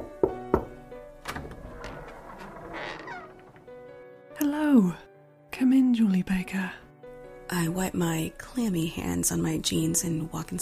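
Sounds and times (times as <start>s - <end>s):
knocking on a door: 0.0s - 0.8s
speech: 4.5s - 6.8s, 7.5s - 10.6s.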